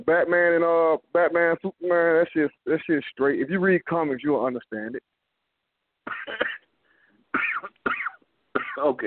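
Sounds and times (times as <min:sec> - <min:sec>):
speech: 0:00.0 - 0:05.2, 0:06.1 - 0:06.6, 0:08.8 - 0:09.0
person coughing in harsh raspy bursts: 0:06.1 - 0:06.7, 0:07.4 - 0:09.0
wheezy breath: 0:06.8 - 0:07.3.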